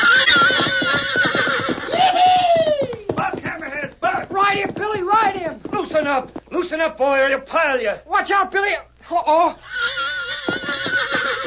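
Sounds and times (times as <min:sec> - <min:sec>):
fiery red stallion turned loose neighing: 0:00.0 - 0:02.0, 0:09.7 - 0:11.4
rapid stamping hoofbeats: 0:00.0 - 0:07.0, 0:09.9 - 0:11.4
speech: 0:06.2 - 0:10.0.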